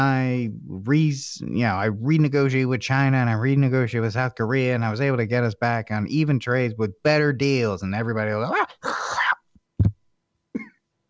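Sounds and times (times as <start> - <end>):
person clearing throat after nearly choking: 0.0 - 0.8, 8.7 - 9.4
speech: 0.0 - 8.9
person coughing after nearly choking: 8.8 - 9.4.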